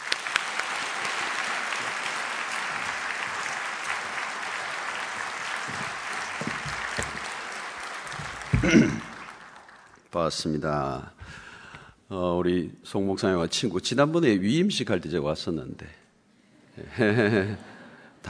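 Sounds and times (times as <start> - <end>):
church audience applauding a pastor coming forward to preach: 0.0 - 10.1
speech: 8.7 - 9.0, 10.2 - 11.4, 12.1 - 16.0, 16.8 - 18.2.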